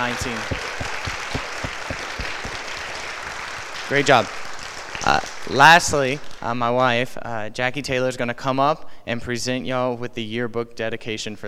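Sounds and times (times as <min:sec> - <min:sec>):
speech: 0:00.0 - 0:01.0, 0:03.9 - 0:04.4, 0:05.0 - 0:11.4
audience applause at a school ceremony for a kindergarten class: 0:00.0 - 0:06.6.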